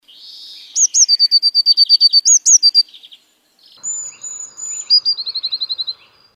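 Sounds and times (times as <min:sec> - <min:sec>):
Eurasian blue tit singing with buzzy note and trills: 0:00.2 - 0:06.3.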